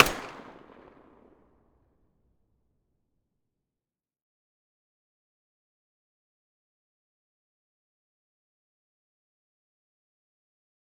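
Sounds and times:
distant submachine gun muzzle shots: 0.0 - 1.4.

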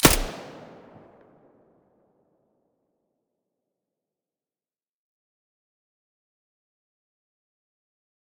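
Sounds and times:
suppressed P90 gunshots: 0.0 - 1.4.

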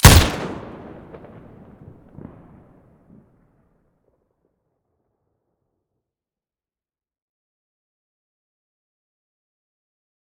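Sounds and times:
WA2000 rifle muzzle gunshot: 0.0 - 2.3.

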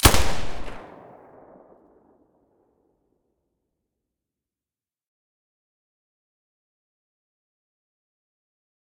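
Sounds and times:
Galil rifle with silencer firing: 0.0 - 1.7.

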